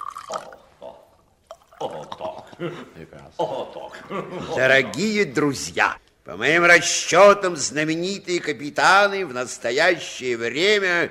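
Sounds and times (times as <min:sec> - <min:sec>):
drink splashing and gurgling as poured into glasses: 0:00.0 - 0:00.7, 0:01.4 - 0:02.0
laughter: 0:01.8 - 0:05.1
speech: 0:01.8 - 0:11.0.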